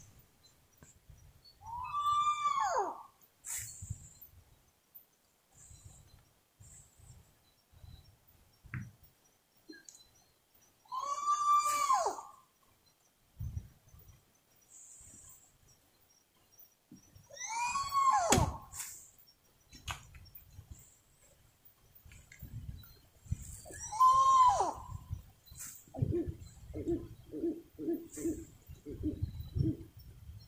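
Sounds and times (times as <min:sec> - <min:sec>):
spot-bellied eagle owl calling: 0:01.6 - 0:03.6, 0:10.8 - 0:12.4, 0:17.3 - 0:19.0, 0:23.4 - 0:29.9.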